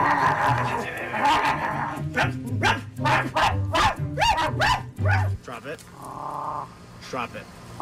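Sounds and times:
speech: 0.5 - 2.7, 7.1 - 7.8
dog barking: 2.6 - 5.4.

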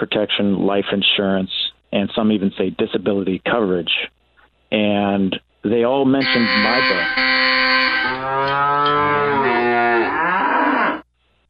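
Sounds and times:
speech: 0.0 - 7.6
cow mooing: 6.2 - 11.0.

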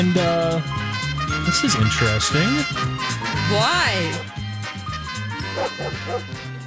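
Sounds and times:
speech: 0.0 - 4.4, 5.6 - 6.5
person imitating a dog barking and yipping: 5.5 - 6.3.

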